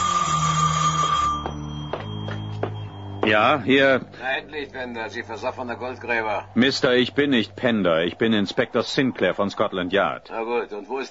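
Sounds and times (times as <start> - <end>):
telephone ringing in a gravedigger's house on a cemetery: 0.0 - 4.2
low drone: 0.0 - 11.0
speech: 3.3 - 11.0.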